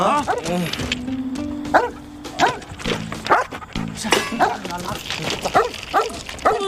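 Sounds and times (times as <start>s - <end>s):
big black dog barking: 0.2s - 0.6s, 1.7s - 6.6s.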